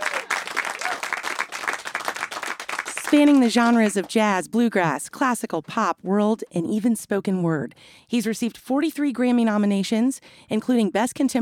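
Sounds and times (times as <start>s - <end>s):
dense audience applause greeting a musician's introduction: 0.0s - 4.1s
speech: 3.1s - 11.3s.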